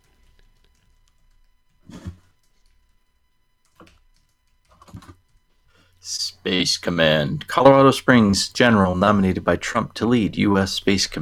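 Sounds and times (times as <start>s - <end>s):
faint keystrokes on a computer keyboard typing a search: 0.0s - 1.8s, 3.6s - 5.4s
speech: 6.0s - 11.2s.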